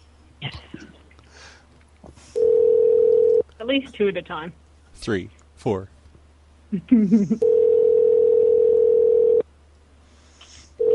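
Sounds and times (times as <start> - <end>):
speech: 0.4 - 0.9, 3.7 - 5.9, 6.7 - 7.6
steady telephone tone: 2.4 - 3.4, 7.4 - 9.4.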